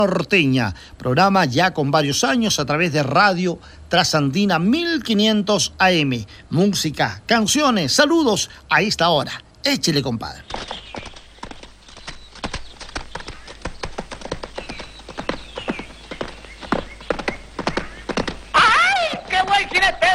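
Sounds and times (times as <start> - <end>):
speech: 0.0 - 10.8
ridden horse hooves clopping: 10.4 - 20.1.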